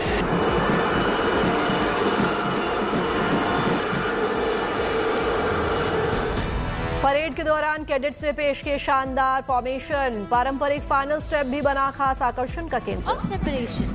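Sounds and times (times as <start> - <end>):
air force helicopters roaring overhead: 0.0 - 7.0
thin high whine of helicopters: 0.0 - 7.1
speech: 7.4 - 13.9.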